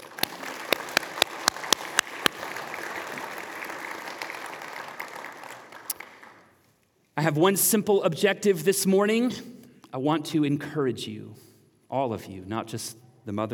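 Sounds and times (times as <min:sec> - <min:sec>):
sharp claps: 0:00.0 - 0:06.5
audience applauding: 0:00.0 - 0:06.6
speech: 0:07.2 - 0:13.5.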